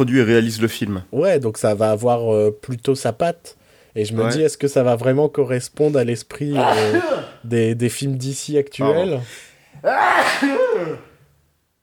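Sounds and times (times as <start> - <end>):
speech: 0.0 - 11.1
loud sneeze caused by hay fever: 6.5 - 7.5, 9.8 - 11.2.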